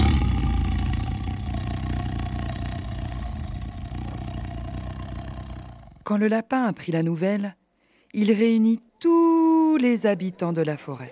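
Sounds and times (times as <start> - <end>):
deep rumbling tiger roar: 0.0 - 6.1
speech: 6.1 - 11.1.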